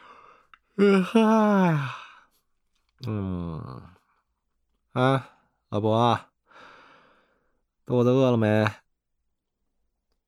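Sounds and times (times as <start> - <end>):
speech: 0.8 - 2.0, 3.0 - 4.0, 5.0 - 6.3, 7.9 - 8.8
person yawning with a long falling groan: 0.8 - 2.2.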